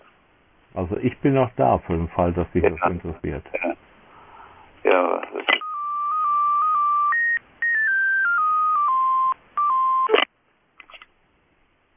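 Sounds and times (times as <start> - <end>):
speech: 0.8 - 3.8, 4.8 - 5.5
electronic telephone dialing tones: 5.6 - 10.3.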